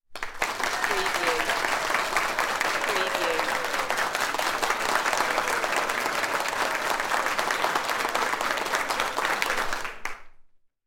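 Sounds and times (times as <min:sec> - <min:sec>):
crowd applauding: 0:00.1 - 0:10.4.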